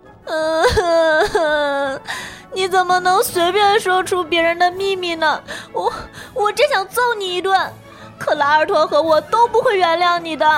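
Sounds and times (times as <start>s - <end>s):
girl crying: 0.2s - 2.6s, 5.6s - 6.2s
speech: 2.0s - 10.5s.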